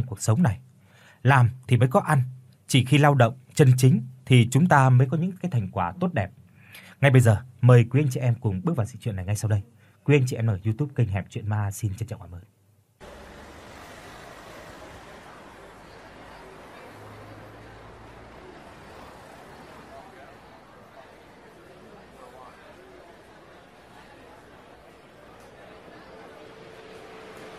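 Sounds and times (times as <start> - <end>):
speech: 0.0 - 12.6
continuous crowd chatter on a busy city street at a hospital gate: 13.0 - 27.5
faint steady traffic rumble on a busy city street at a hospital gate: 13.0 - 27.5.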